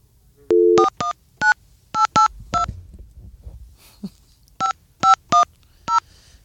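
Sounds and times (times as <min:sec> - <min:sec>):
electronic telephone keypad dual-tone beeps: 0:00.5 - 0:02.3.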